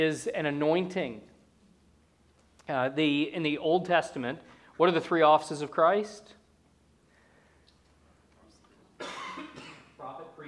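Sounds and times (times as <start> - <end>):
speech: 0.0 - 1.3, 2.7 - 6.4
harsh breathy cough with microphone muted: 9.0 - 10.1.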